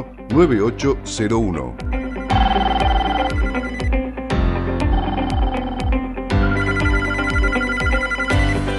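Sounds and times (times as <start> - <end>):
speech: 0.0 - 2.0
telephone ringing with a melodic electronic tone: 2.0 - 4.0, 4.8 - 8.6.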